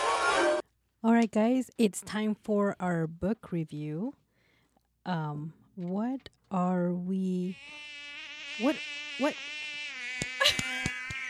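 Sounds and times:
speech: 0:01.1 - 0:04.2, 0:05.0 - 0:08.0, 0:08.6 - 0:09.6
mosquito whining: 0:07.4 - 0:11.2.

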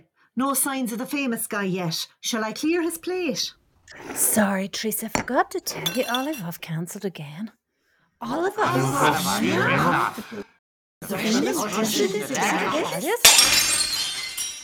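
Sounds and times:
speech: 0:00.4 - 0:07.6, 0:08.2 - 0:13.6
scattering tinkle of glass pieces: 0:05.8 - 0:06.5, 0:13.2 - 0:14.6
laughter: 0:08.3 - 0:13.1
glass shattering in a kitchen: 0:13.2 - 0:14.6.

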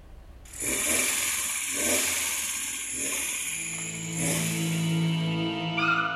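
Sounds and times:
homemade miniature truck engine running: 0:00.5 - 0:05.2.

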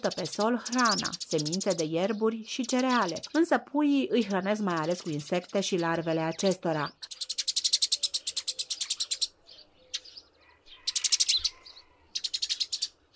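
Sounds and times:
speech: 0:00.0 - 0:07.2
Eurasian tree sparrows chirping: 0:00.0 - 0:13.1.

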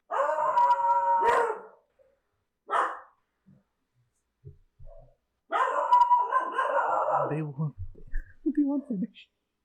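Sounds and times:
dogs barking: 0:00.1 - 0:01.8, 0:02.7 - 0:03.2, 0:05.5 - 0:07.4
dogs howling: 0:00.1 - 0:01.8, 0:05.6 - 0:07.4
speech: 0:07.3 - 0:07.8, 0:08.7 - 0:09.4.

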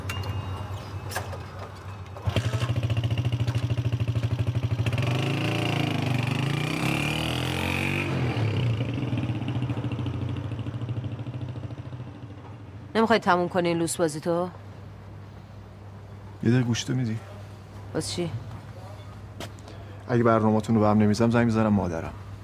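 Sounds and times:
motorcycle engine starting, idling and revving with mechanical clatter: 0:02.2 - 0:12.6
speech: 0:13.0 - 0:14.6, 0:16.4 - 0:17.3, 0:18.0 - 0:18.5, 0:20.1 - 0:22.2.

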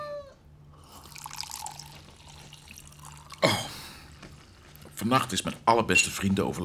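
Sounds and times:
vodka poured into a glass: 0:00.8 - 0:05.7
speech: 0:05.0 - 0:06.6.

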